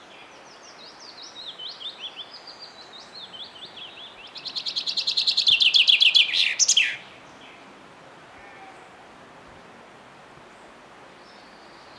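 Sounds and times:
quiet background hiss: 0.0 - 11.9
common chaffinch Fringilla coelebs singing: 2.7 - 7.0.

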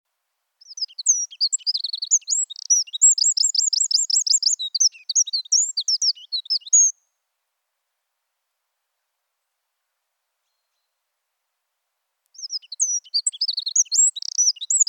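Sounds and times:
Eurasian wren Troglodytes troglodytes song with tinkling notes and rattling trills: 0.6 - 7.1, 12.3 - 14.8.

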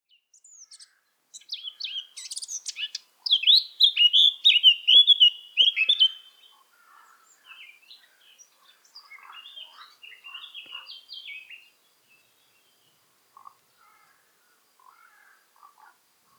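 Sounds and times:
Eurasian blackcap Sylvia atricapilla song with twittering, whistles and warble: 0.1 - 6.6, 7.4 - 12.8.

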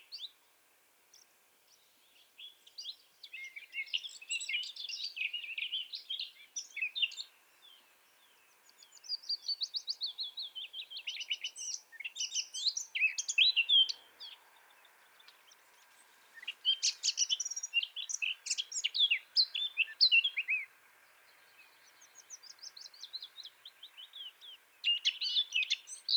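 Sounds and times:
Eurasian blackcap Sylvia atricapilla warbling song: 1.1 - 26.1.

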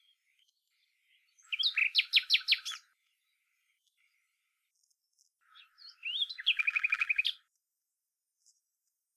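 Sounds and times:
common nightingale Luscinia megarhynchos singing: 0.0 - 2.9, 5.5 - 7.4.

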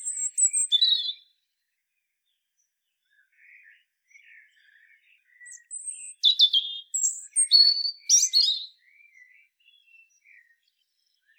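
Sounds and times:
European robin Erithacus rubecula song: 0.0 - 1.3, 5.3 - 8.8.

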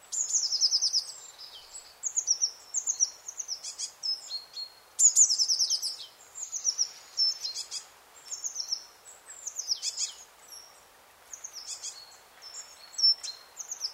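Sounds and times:
Eurasian blue tit Cyanistes caeruleus giving high trilled buzzy calls: 0.1 - 1.4, 2.0 - 13.9.

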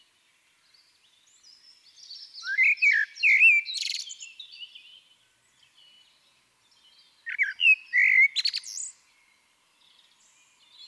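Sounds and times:
Eurasian blackbird Turdus merula singing warbled whistles: 0.7 - 9.0.

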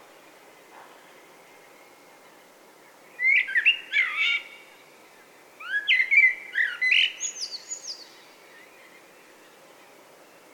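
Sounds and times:
common blackbird Turdus merula singing: 3.1 - 4.7, 5.6 - 9.6.

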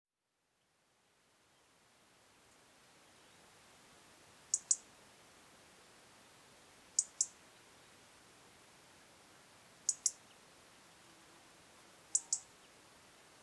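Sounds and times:
quiet hiss: 0.2 - 13.4
European robin Erithacus rubecula ticking: 4.5 - 4.8, 7.0 - 7.4, 9.9 - 10.2, 12.1 - 12.5.

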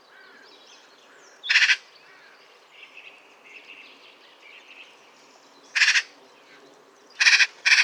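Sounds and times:
Eurasian magpie Pica pica giving harsh rasping chatter: 7.2 - 7.8.

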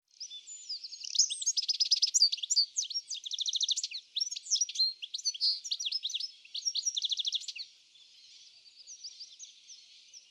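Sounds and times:
European goldfinch Carduelis carduelis twittering: 0.3 - 7.7.

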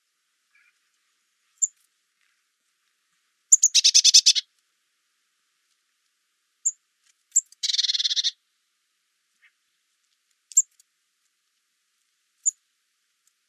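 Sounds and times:
Eurasian blue tit Cyanistes caeruleus high single calling notes: 3.5 - 4.4, 7.6 - 8.4.

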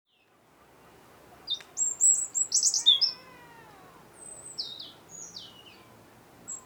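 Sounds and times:
European robin Erithacus rubecula singing: 1.4 - 3.4, 4.2 - 6.6.

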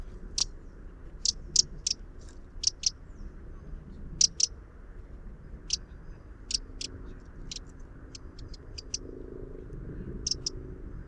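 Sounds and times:
Eurasian wren dry ticking calls: 0.0 - 0.6, 1.2 - 2.0, 2.6 - 3.1, 4.2 - 4.5, 5.6 - 9.1, 10.2 - 10.6
low background rumble: 0.0 - 11.0.

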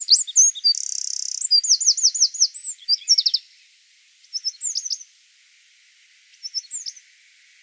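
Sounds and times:
Eurasian wren song: 0.0 - 3.6, 4.2 - 5.1, 6.3 - 7.1.

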